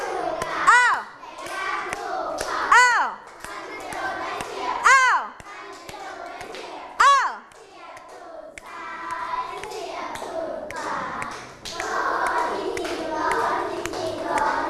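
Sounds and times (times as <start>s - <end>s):
group of children clapping hands: 0.0s - 14.6s.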